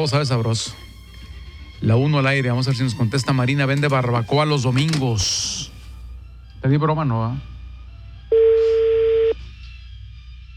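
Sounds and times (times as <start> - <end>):
speech: 0.0 - 0.9, 1.8 - 5.7, 6.6 - 7.5
telephone ringback tone: 8.3 - 9.4.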